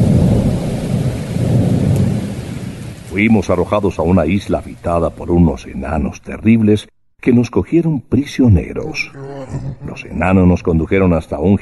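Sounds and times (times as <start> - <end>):
deep thunder rumbling in a thunderstorm: 0.0 - 2.9
heavy rain hissing in a thunderstorm: 0.0 - 6.1
speech: 3.2 - 11.5.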